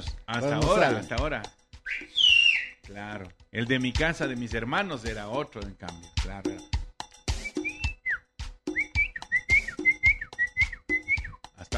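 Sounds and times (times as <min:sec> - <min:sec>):
speech: 0:00.0 - 0:02.2, 0:02.9 - 0:06.7
distinctive family call whistle: 0:01.9 - 0:02.8, 0:07.4 - 0:11.4.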